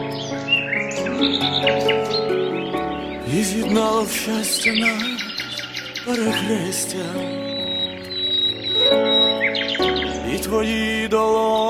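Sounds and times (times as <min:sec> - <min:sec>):
nightingales singing: 0:00.0 - 0:11.6
sustained musical tones: 0:00.0 - 0:11.6
speech: 0:01.2 - 0:02.2, 0:03.3 - 0:05.3, 0:06.0 - 0:07.5, 0:10.4 - 0:11.6.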